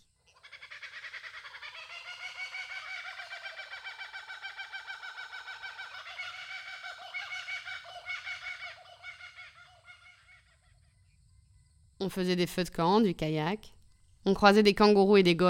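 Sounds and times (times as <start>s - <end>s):
kookaburra laughing call: 0.3s - 11.0s
speech: 12.0s - 15.4s.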